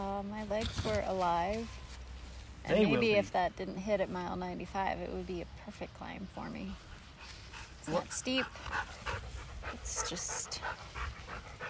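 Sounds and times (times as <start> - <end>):
speech: 0.0 - 1.8, 2.6 - 6.9, 7.9 - 11.5
dog panting after chasing a ball at a county park: 6.9 - 11.6.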